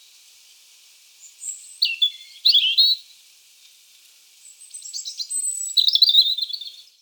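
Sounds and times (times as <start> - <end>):
European robin singing high squeaky whistles and twittering: 1.4 - 3.0, 4.8 - 6.8.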